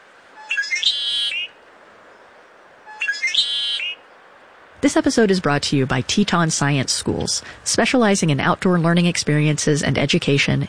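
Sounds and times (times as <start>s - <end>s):
quiet hiss: 0.0s - 10.6s
bright complex sparrow songs with trilling warbling phrases: 0.4s - 4.3s
speech: 4.8s - 10.6s.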